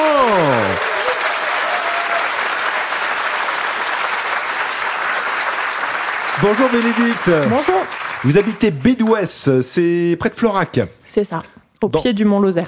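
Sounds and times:
studio audience applause welcoming contestants: 0.0 - 9.9
speech: 6.4 - 12.6.

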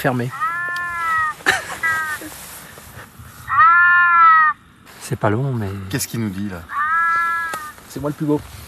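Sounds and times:
speech: 0.0 - 0.4, 5.1 - 6.8, 7.9 - 8.6
European wildcat rutting call: 0.2 - 2.3, 3.5 - 4.6, 6.6 - 7.8.

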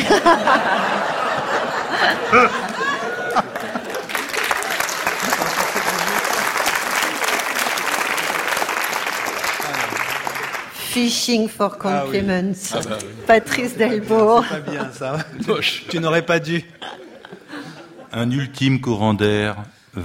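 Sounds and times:
small audience chuckling and murmuring laughter: 0.0 - 8.6, 13.6 - 18.2
speech: 0.1 - 1.0, 2.0 - 2.7, 11.0 - 17.0, 18.1 - 20.0
limp half-hearted applause: 1.9 - 10.9.

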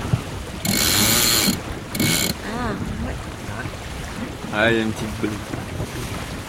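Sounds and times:
faint wind: 0.0 - 6.4
water noise: 0.0 - 6.4
sailboat winch ratcheting as a sail is trimmed on a small 8-metre sailboat: 0.6 - 2.4
speech: 4.5 - 5.7.

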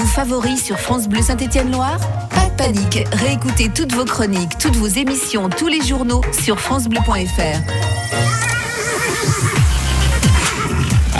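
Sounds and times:
speech: 0.1 - 8.4
horse neighing: 8.0 - 10.8.

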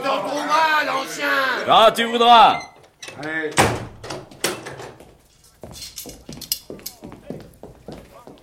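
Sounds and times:
speech: 1.1 - 3.8
door swinging shut with a solid thump: 2.4 - 5.0
shuffling footsteps: 4.3 - 8.4.

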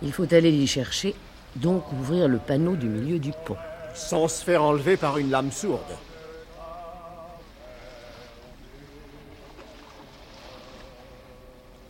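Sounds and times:
speech: 0.0 - 6.1
men's voices wavering and singing faintly: 0.0 - 11.8
waves crashing and surging against a rolling ship on a livid ocean: 0.3 - 11.8.

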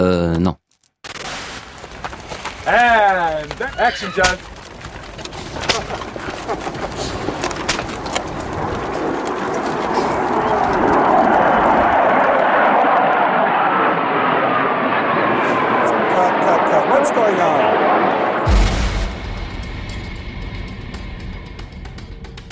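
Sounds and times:
speech: 0.0 - 0.6, 2.7 - 4.5
military jet roaring overhead: 2.6 - 19.7.

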